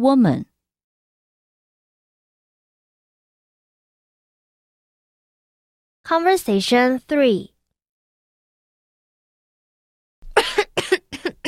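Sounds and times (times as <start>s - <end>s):
speech: 0.0s - 0.5s, 6.1s - 7.5s
person with an uncomfortable throat coughing: 10.3s - 11.4s.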